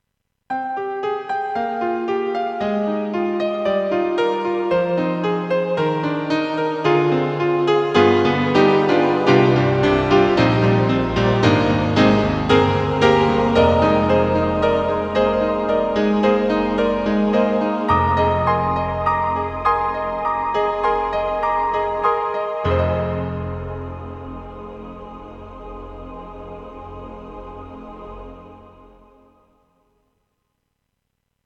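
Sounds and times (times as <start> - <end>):
Roland SRX-06 synthesized piano: 0.5 - 29.6
Roland XV-5050 synthesized vocal choir: 6.8 - 29.9.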